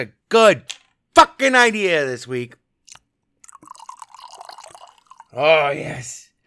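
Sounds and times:
speech: 0.0s - 2.6s, 5.3s - 6.2s
whiskey pouring from a bottle with bubbly gurgle: 2.9s - 5.4s
glass clink: 3.5s - 5.4s.

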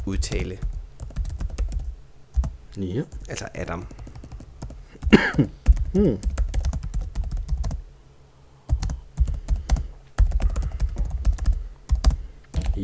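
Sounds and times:
speech: 0.1s - 0.8s, 2.8s - 4.0s, 5.1s - 6.3s
rapid typing on a computer keyboard: 0.1s - 2.5s, 3.8s - 7.8s, 8.7s - 12.8s.

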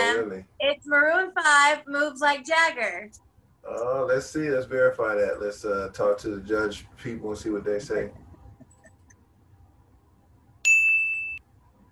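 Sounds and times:
speech: 0.2s - 8.2s
bright bell ding for a correct answer: 10.7s - 11.4s.

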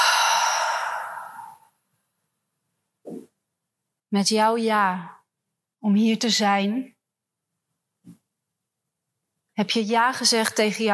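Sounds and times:
deep exhale during a guided breathing exercise: 0.0s - 1.7s
faint breath: 0.0s - 1.8s
speech: 4.1s - 5.2s, 5.8s - 7.0s, 9.6s - 10.9s.

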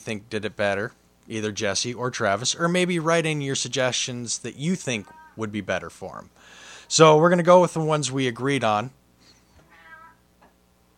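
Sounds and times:
speech: 0.0s - 9.0s
cat meowing: 9.6s - 10.2s.

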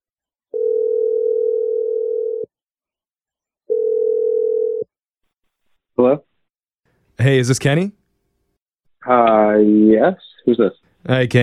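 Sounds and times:
telephone ringing tones: 0.6s - 2.5s, 3.7s - 4.9s
speech: 7.3s - 8.0s, 9.0s - 11.4s.

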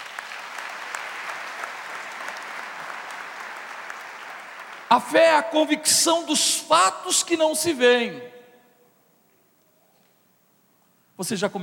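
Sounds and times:
audience applauding: 0.0s - 5.4s
speech: 4.9s - 8.4s, 11.2s - 11.6s.

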